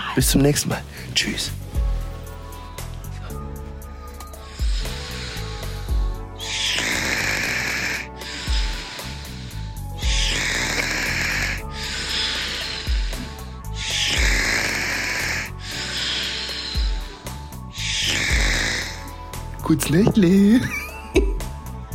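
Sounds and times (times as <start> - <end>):
speech: 0.2 - 1.6, 19.7 - 21.3
person snoring loudly: 3.1 - 21.9.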